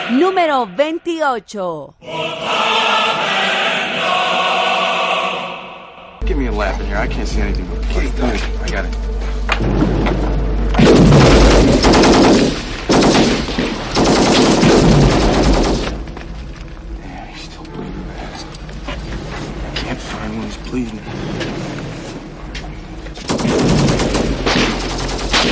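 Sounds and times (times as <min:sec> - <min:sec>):
speech: 0:00.1 - 0:04.3, 0:06.3 - 0:11.1, 0:20.3 - 0:21.6
machine-gun fire and gunfire from a war film: 0:10.8 - 0:16.0, 0:23.2 - 0:25.5.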